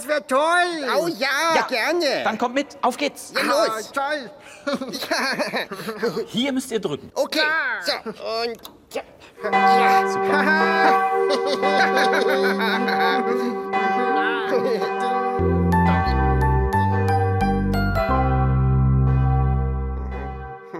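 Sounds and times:
speech: 0.0s - 15.6s
laughter: 4.6s - 6.3s, 10.3s - 13.6s
cathedral bells ringing: 9.4s - 20.7s.

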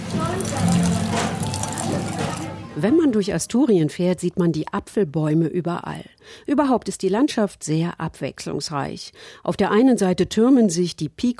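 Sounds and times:
Spanish sidra poured from a height by an escanciador splashing into a glass: 0.0s - 2.8s
indistinct voices murmuring: 0.0s - 3.0s
speech: 2.8s - 11.3s.

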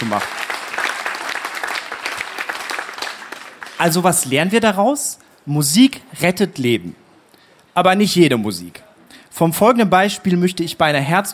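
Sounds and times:
audience applause: 0.0s - 3.8s
speech: 0.2s - 0.4s, 3.8s - 7.0s, 7.8s - 11.3s.

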